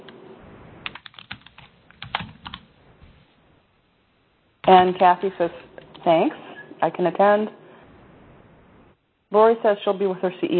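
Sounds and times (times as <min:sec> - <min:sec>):
faint hiss: 0:00.0 - 0:10.5
meeting attendees typing on computer keyboards: 0:00.8 - 0:02.7
speech: 0:04.7 - 0:07.6, 0:09.3 - 0:10.5.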